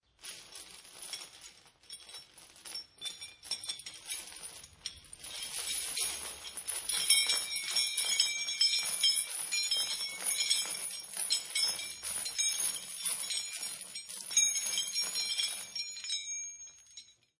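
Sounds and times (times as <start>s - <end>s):
several heavy chains being moved, shaken, rattling and clanking: 0.3s - 17.3s.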